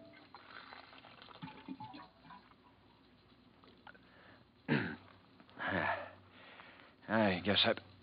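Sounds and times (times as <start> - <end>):
water gurgling from a water cooler as a drink is poured: 0.0 - 2.8
speech: 7.1 - 7.9.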